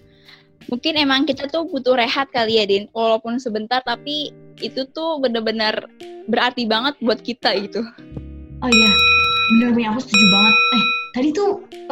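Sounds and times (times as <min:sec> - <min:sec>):
speech: 0:00.3 - 0:11.9
two people chatting: 0:00.6 - 0:11.9
bell ringing: 0:08.7 - 0:11.2.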